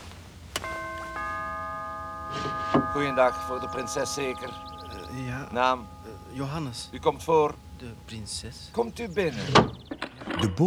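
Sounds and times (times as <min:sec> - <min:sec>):
doorbell ringing at a palace door: 0:00.5 - 0:10.0
speech: 0:02.7 - 0:09.8, 0:10.4 - 0:10.6.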